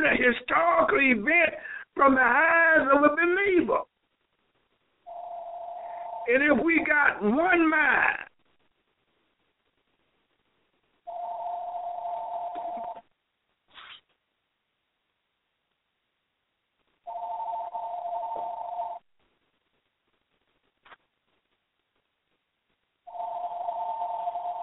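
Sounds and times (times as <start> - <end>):
speech: 0.2 - 3.9, 6.3 - 8.2
telephone ringing with electronic ring bursts: 5.1 - 6.8, 11.1 - 13.1, 17.0 - 19.1, 23.1 - 24.6.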